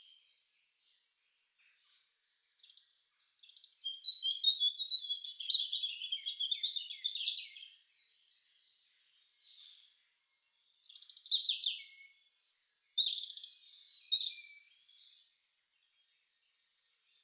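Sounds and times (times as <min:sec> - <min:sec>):
European robin singing: 0:02.4 - 0:17.2.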